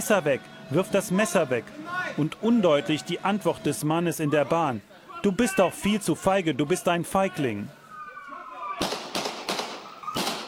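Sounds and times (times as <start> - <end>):
speech: 0.0 - 7.8
gunshots: 8.8 - 10.4.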